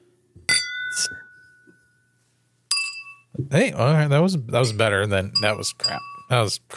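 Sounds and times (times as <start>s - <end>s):
glasses clinking in a toast during a drink tasting: 0.5s - 2.0s, 2.7s - 3.3s, 4.6s - 6.4s
speech: 1.0s - 1.2s, 3.4s - 6.7s.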